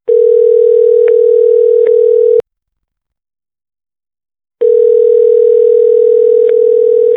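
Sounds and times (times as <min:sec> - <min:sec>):
telephone call tone: 0:00.1 - 0:02.4, 0:04.6 - 0:07.1.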